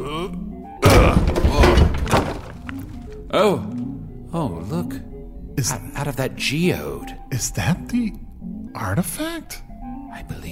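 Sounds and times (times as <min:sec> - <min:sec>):
speech: 0:00.2 - 0:01.7, 0:03.3 - 0:10.5
door being knocked down: 0:00.8 - 0:03.2.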